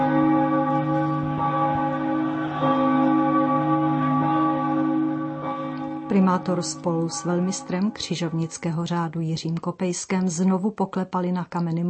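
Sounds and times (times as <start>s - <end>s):
Old Town church bells ringing in Prague: 0.0s - 8.9s
speech: 6.2s - 11.8s.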